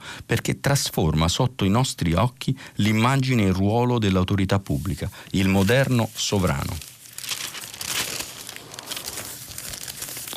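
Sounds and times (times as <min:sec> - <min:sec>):
speech: 0:00.3 - 0:06.9
newspaper pages being turned and rustled: 0:04.6 - 0:10.3.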